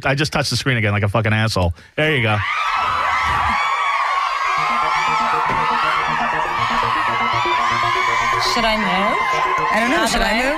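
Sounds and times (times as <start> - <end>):
speech: 0.0 - 3.0, 8.5 - 10.5
dense crowd cheering with shouts, whoops and laughter: 2.3 - 10.5.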